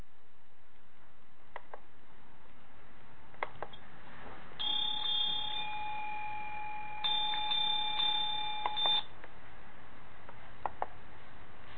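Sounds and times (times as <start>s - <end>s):
dairy cowbell ringing with a metallic tone: 4.6s - 8.6s.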